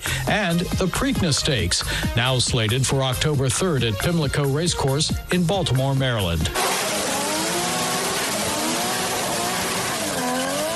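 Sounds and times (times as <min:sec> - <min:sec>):
speech: 0:00.3 - 0:06.7
NASCAR stock car engines revving at Darlington Raceway in South Carolina: 0:06.5 - 0:10.7.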